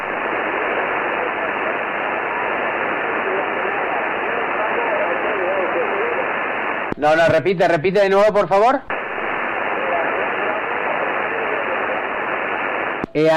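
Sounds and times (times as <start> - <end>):
dense steady radio static with QRM interference: 0.0 - 13.3
speech: 7.0 - 8.9, 13.2 - 13.3.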